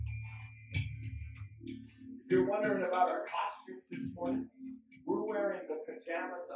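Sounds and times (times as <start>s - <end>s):
small bells from China ringing: 0.0s - 3.2s
speech: 1.7s - 6.5s.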